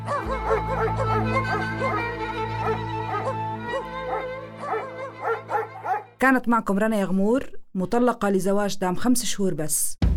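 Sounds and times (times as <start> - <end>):
speech: 0.0 - 4.0, 6.2 - 10.0
dogs barking and yelping while searching the streets of Amman: 0.0 - 6.2.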